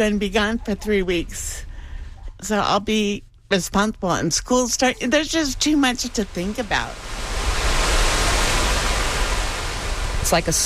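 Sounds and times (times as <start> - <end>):
speech: 0.0 - 1.7, 2.4 - 7.1, 10.3 - 10.6
river water rushing behind a flood wall: 6.3 - 10.6.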